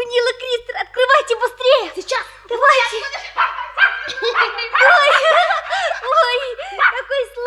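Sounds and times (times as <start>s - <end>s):
laughter: 1.1s - 7.4s
puppy barking and yipping: 2.8s - 7.4s.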